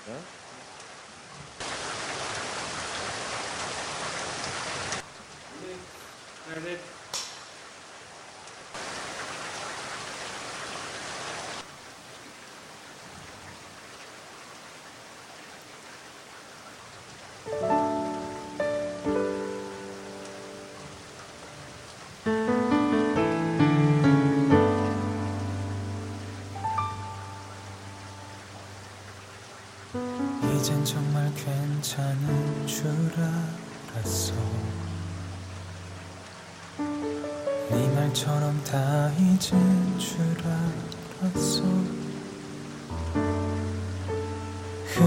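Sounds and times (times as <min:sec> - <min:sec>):
speech: 0:00.0 - 0:00.4, 0:30.6 - 0:34.7, 0:38.2 - 0:42.0
steady rain: 0:00.0 - 0:45.0
soft piano-like music: 0:17.4 - 0:45.0.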